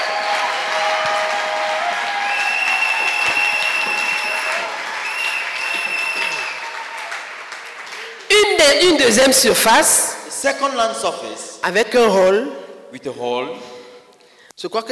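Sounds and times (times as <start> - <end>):
church congregation clapping during a thanksgiving service: 0.0 - 9.1
speech: 8.8 - 13.7, 14.6 - 14.9.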